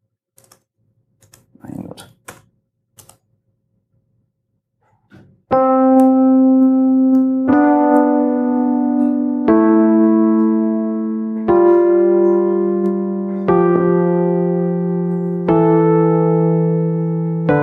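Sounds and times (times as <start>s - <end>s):
chromatic scale notes played back as a music example: 5.5s - 17.6s.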